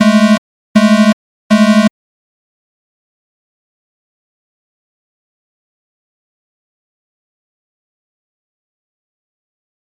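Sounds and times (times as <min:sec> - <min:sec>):
autoclave alarm: 0:00.0 - 0:01.9.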